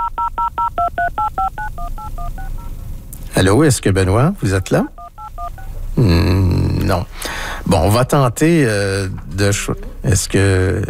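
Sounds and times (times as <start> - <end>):
telephone keypad tones dialing a cell phone: 0.0 - 2.7, 5.0 - 5.7
speech: 3.4 - 5.0, 6.0 - 10.8.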